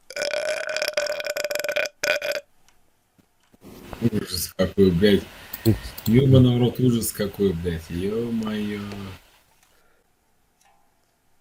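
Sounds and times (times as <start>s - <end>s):
long loud human burp: 0.0s - 2.5s
speech: 4.0s - 9.2s.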